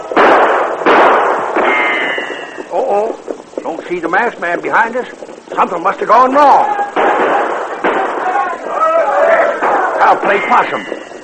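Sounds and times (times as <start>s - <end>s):
gunshots during an outlaw attack on a stagecoach: 0.0s - 2.7s, 6.4s - 11.2s
speech: 3.9s - 7.4s, 10.1s - 11.0s.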